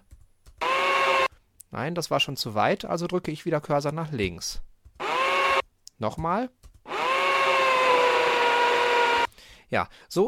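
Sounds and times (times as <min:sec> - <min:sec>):
electric drill whirring with high-pitched motor whine: 0:00.6 - 0:01.3, 0:05.0 - 0:05.6, 0:06.9 - 0:09.3
speech: 0:01.7 - 0:04.7, 0:06.0 - 0:06.6, 0:09.7 - 0:10.2.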